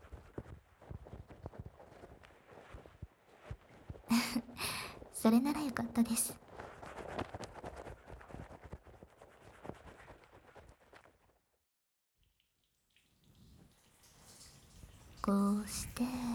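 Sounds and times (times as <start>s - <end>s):
shower water spraying and splashing: 4.1s - 5.8s, 12.6s - 16.3s
speech: 5.2s - 6.5s.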